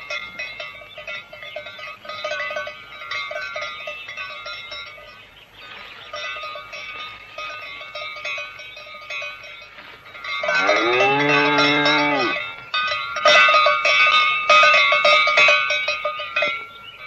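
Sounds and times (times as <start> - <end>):
cowbell clanking: 0.0 - 17.0
cow mooing: 10.5 - 12.4.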